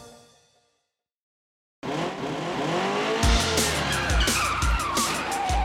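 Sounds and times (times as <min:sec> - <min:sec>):
car engine revving loudly: 0:01.8 - 0:05.6
car tires screeching as the vehicle skids: 0:01.8 - 0:05.6.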